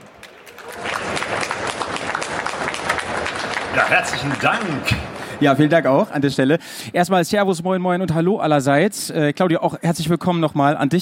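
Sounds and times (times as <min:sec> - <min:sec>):
audience clapping for guests on a stage: 0:00.0 - 0:06.0
speech: 0:03.8 - 0:11.0.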